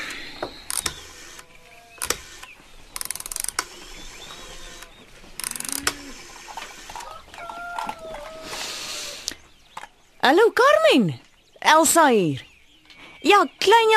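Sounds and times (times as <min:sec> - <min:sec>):
rotary telephone being dialed: 0:00.7 - 0:06.0
speech: 0:10.3 - 0:12.5, 0:13.2 - 0:13.9.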